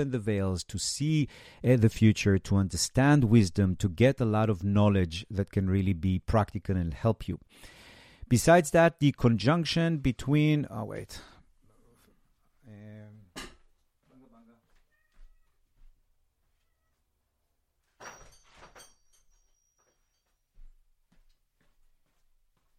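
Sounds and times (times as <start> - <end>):
speech: 0.0 - 11.3
cat meowing loudly: 14.9 - 15.6.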